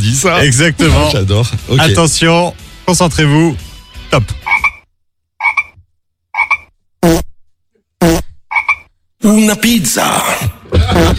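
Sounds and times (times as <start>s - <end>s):
speech: 0.0s - 4.4s, 9.2s - 11.1s
toads croaking: 4.4s - 4.8s, 5.4s - 5.8s, 6.4s - 7.2s, 8.0s - 8.9s.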